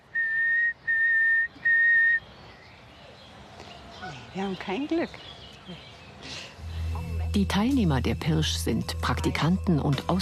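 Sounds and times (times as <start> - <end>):
faint outdoor noise: 0.0 - 10.2
person whistling to lure a nightingale in the Tiergarten park in Berlin: 0.1 - 2.2
speech: 4.4 - 6.4, 7.3 - 10.2.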